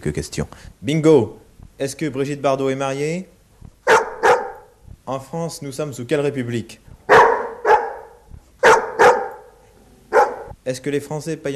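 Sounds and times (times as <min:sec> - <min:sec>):
speech: 0:00.0 - 0:03.4, 0:05.1 - 0:06.8, 0:10.6 - 0:11.5
dog barking in answer to questions: 0:03.8 - 0:04.7, 0:07.1 - 0:10.6.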